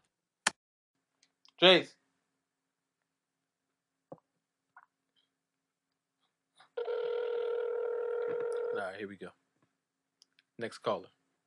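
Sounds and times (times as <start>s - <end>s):
speech: 1.6s - 2.0s, 8.9s - 9.4s, 10.6s - 11.2s
telephone line tone: 6.8s - 8.9s.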